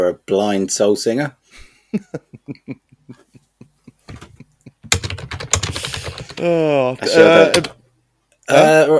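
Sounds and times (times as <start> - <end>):
speech: 0.0 - 3.2, 6.4 - 7.8, 8.5 - 8.9
typing on a computer keyboard: 4.9 - 6.5.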